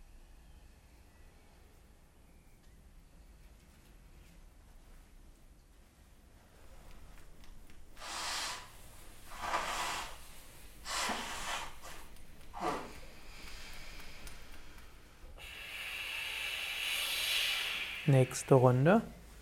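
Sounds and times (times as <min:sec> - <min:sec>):
airy breaths exhaled through the left nostril in a breathing exercise: 0:08.0 - 0:18.6
speech: 0:18.1 - 0:19.2.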